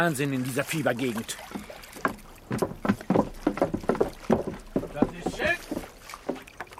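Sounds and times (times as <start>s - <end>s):
speech: 0.0s - 1.7s
person swimming with splashing strokes through water: 0.0s - 6.7s.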